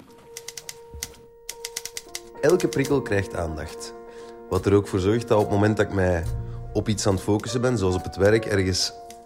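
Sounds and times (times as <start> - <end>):
keyboard typing clicks: 0.2 - 3.0
speech: 2.4 - 9.0.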